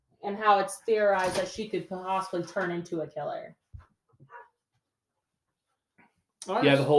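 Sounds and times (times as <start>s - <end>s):
speech: 0.3s - 3.6s, 6.4s - 6.9s
dog barking: 4.3s - 4.5s.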